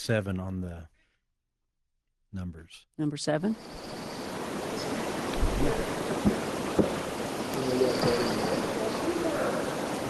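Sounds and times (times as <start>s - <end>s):
speech: 0.0s - 0.9s, 2.3s - 4.0s, 4.8s - 6.4s, 7.6s - 8.7s
breeze in woodland: 3.6s - 10.0s
faint drawn-out distant yell: 3.7s - 10.0s
sharp hollow knocks on a tree in woodland: 5.4s - 7.0s.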